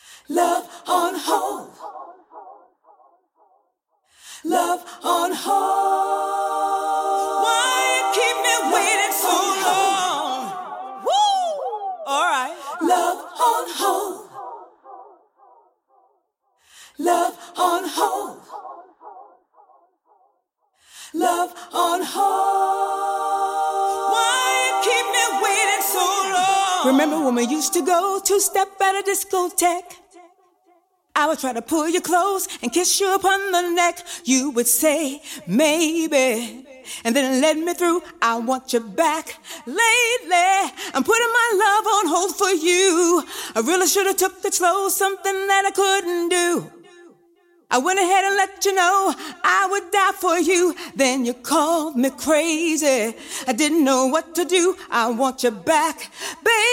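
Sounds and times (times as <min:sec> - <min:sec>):
a cappella singing: 0:00.0 - 0:02.7, 0:04.2 - 0:15.3, 0:16.7 - 0:19.4, 0:20.9 - 0:30.4, 0:31.2 - 0:56.7.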